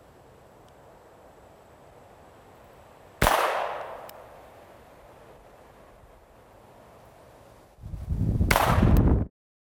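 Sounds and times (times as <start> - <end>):
magazine-fed gun firing a sharp crack: 3.2 - 4.1, 8.5 - 9.0.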